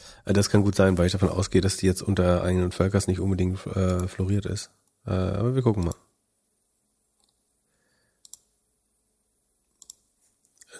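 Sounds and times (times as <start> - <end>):
faint hiss: 0.0 - 10.7
speech: 0.2 - 6.1
quiet computer mouse clicks: 5.8 - 6.0, 7.2 - 7.4, 8.2 - 8.5, 9.7 - 10.7.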